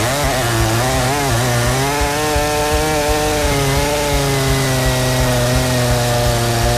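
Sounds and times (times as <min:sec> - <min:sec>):
chainsaw engine running at high revs: 0:00.0 - 0:06.7.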